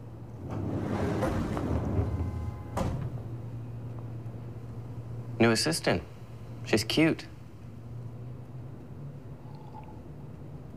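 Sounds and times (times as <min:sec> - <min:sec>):
low rumbling room hum: 0:00.0 - 0:10.7
door swinging shut with a muffled thud: 0:00.4 - 0:03.4
speech: 0:05.4 - 0:07.3.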